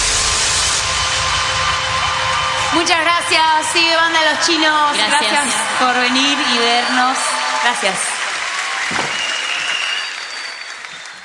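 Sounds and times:
audience clapping and cheering for a band at an outdoor stage: 0:00.0 - 0:11.2
crowd noise at an outdoor rock concert: 0:00.0 - 0:11.2
speech: 0:02.8 - 0:08.1.

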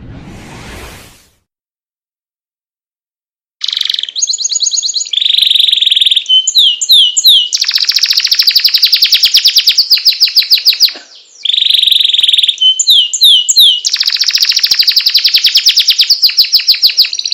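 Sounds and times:
Atlantic canary of the loper type singing buzzy notes and long rolling trill: 0:03.6 - 0:17.3.

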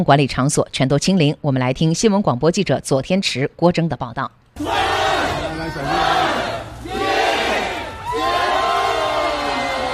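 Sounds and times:
speech: 0:00.0 - 0:04.9
residents cheering and shouting at a residential compound gate as a lockdown ends: 0:04.6 - 0:09.9.

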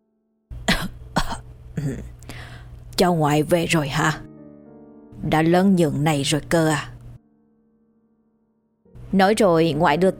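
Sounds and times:
elderly woman coughing: 0:00.6 - 0:02.2
speech: 0:01.8 - 0:02.2, 0:03.0 - 0:04.3, 0:05.2 - 0:06.9, 0:09.1 - 0:10.1.

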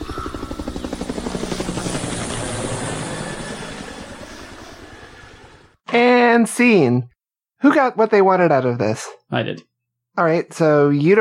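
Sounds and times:
evacuation helicopter rotor thumping: 0:00.0 - 0:05.8
speech: 0:06.0 - 0:11.1.

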